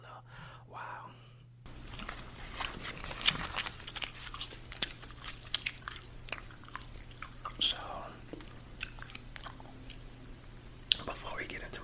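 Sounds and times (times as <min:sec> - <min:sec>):
faint low hum: 0:00.0 - 0:11.8
chewing watermelon gum: 0:01.7 - 0:10.1.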